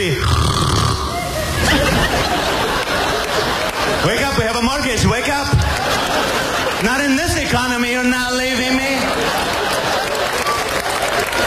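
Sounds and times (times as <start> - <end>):
speech: 0.0 - 0.4
male comedian imitating a husband's loud rasping snoring: 0.0 - 1.2
laughter: 1.2 - 11.4.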